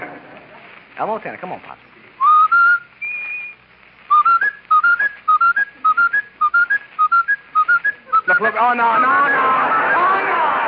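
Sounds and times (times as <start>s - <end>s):
speech: 1.0s - 2.0s, 8.3s - 10.0s
person whistling a tune imitating a skipping broken record: 2.2s - 10.0s.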